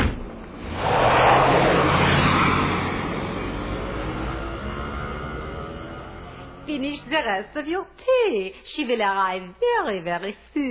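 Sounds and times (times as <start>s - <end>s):
taxi engine roaring while speeding off in pursuit: 0.1s - 7.8s
speech: 6.8s - 10.6s.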